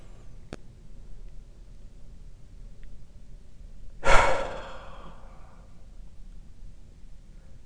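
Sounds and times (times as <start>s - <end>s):
deep belly breath with forceful exhale during a meditation exercise: 4.0s - 5.8s.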